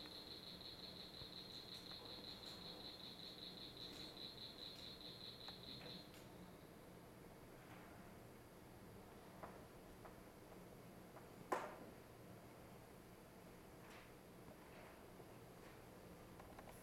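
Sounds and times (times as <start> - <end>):
northern cricket frog calling: 0.0 - 6.1
background hiss: 0.0 - 16.8.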